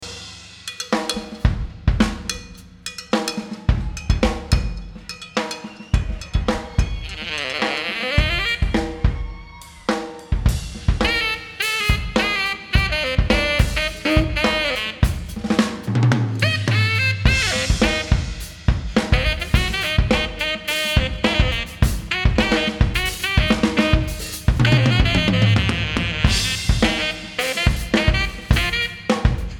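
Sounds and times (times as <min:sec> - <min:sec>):
drums: 0:00.0 - 0:29.5
saxophone: 0:06.7 - 0:09.3, 0:11.0 - 0:15.6, 0:16.4 - 0:29.5.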